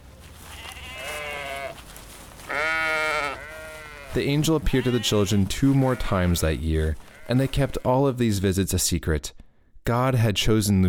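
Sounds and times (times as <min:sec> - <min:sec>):
sheep bleating: 0:00.4 - 0:01.8, 0:02.4 - 0:08.0
speech: 0:04.2 - 0:10.8.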